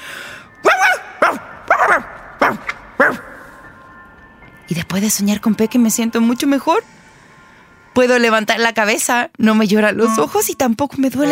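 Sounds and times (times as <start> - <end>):
dog barking loudly: 0.7 - 3.4
speech: 4.9 - 7.0, 8.0 - 11.2.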